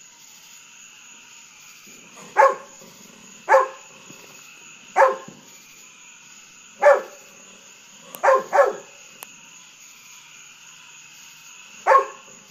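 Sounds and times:
golden retriever barking at fireworks at nighttime: 0:02.2 - 0:04.2, 0:05.0 - 0:05.4, 0:06.8 - 0:07.2, 0:08.1 - 0:08.9, 0:11.8 - 0:12.3.

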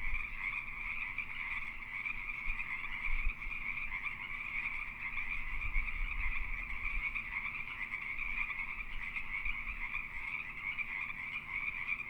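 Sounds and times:
Pacific treefrogs croaking in chorus during mating season: 0:00.0 - 0:12.0.

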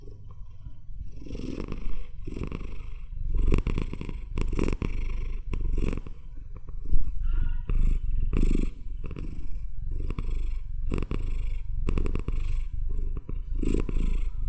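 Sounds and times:
domestic cat purring: 0:00.0 - 0:14.4.

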